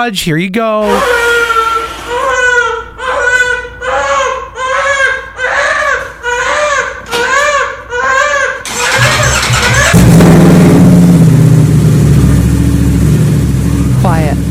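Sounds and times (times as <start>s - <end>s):
speech: 0.0s - 1.2s
baby crying: 0.8s - 10.0s
motorcycle engine running in a garage with the door open: 8.8s - 14.4s.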